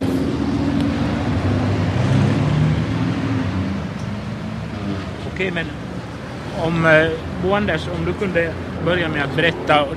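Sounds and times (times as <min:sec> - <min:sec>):
dense traffic of cars rushing past across several lanes: 0:00.0 - 0:09.9
speech: 0:05.4 - 0:05.8, 0:06.6 - 0:09.9.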